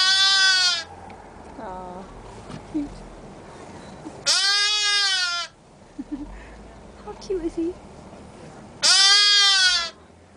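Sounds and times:
lamb bleating at a petting zoo: 0.0s - 0.9s, 4.2s - 5.6s, 8.8s - 10.0s
speech: 2.7s - 3.1s, 7.5s - 7.9s.

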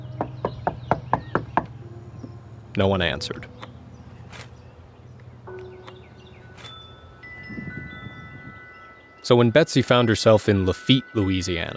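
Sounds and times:
knocking on a house door: 0.2s - 1.7s
speech: 2.8s - 3.7s, 9.3s - 11.7s.

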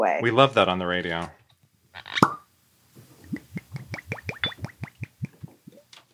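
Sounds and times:
speech: 0.1s - 1.4s
cork popping out of a bottle being opened: 2.0s - 2.5s, 3.2s - 5.8s
liquid glugging in quick rhythmic bursts: 3.0s - 5.9s.

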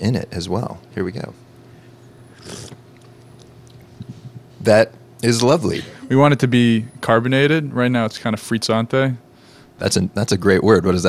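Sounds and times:
speech: 0.0s - 1.5s, 4.7s - 9.2s, 9.8s - 11.0s
low steady hum: 0.0s - 11.0s
slurping sip of a drink with a slice of blood orange: 2.4s - 2.8s.

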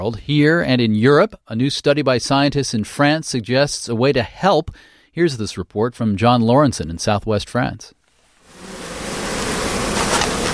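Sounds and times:
speech: 0.0s - 8.0s
honeybees buzzing around a hive frame lifted out at an apiary: 8.4s - 10.5s.

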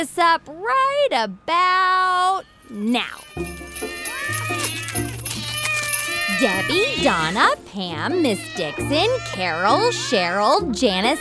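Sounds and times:
speech: 0.0s - 4.1s, 6.4s - 11.1s
several cats meowing: 2.3s - 11.1s.

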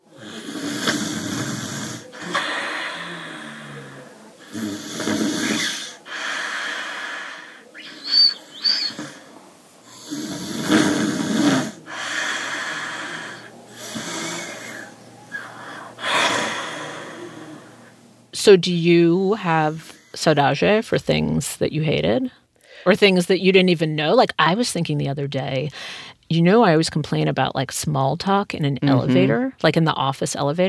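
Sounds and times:
grandmother snoring with raspy breaths and snorting inhales: 0.0s - 17.9s
speech: 18.5s - 30.6s.

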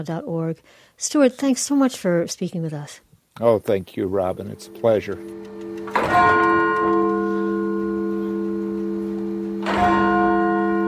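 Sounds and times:
speech: 0.0s - 6.5s
church bells ringing: 4.2s - 10.8s.

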